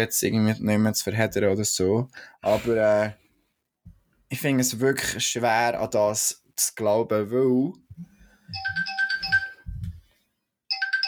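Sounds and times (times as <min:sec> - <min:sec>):
speech: 0:00.0 - 0:03.2, 0:04.3 - 0:08.9
mobile phone ringing with a repeating electronic tone: 0:08.5 - 0:09.7, 0:10.7 - 0:11.0.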